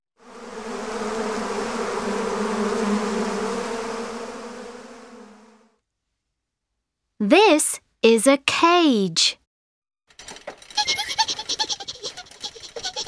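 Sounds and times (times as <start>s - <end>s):
bees buzzing at a beehive: 0.2s - 5.7s
speech: 7.2s - 9.4s
laughter: 10.8s - 13.0s.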